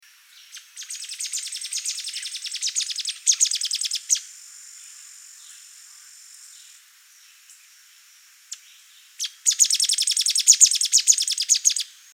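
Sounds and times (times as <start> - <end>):
stripe-headed sparrow calling: 0.4 - 4.2, 9.2 - 11.9.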